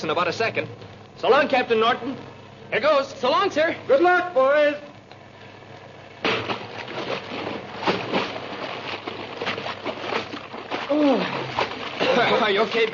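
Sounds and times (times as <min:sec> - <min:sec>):
speech: 0:00.0 - 0:04.8, 0:12.2 - 0:12.9
heavy body plunging into water after a dive: 0:06.3 - 0:12.9.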